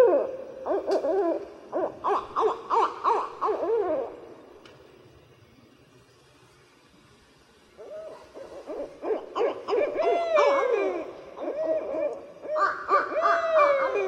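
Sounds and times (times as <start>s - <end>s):
barred owls hooting and cackling in a chorus: 0.0s - 4.5s, 7.8s - 14.0s.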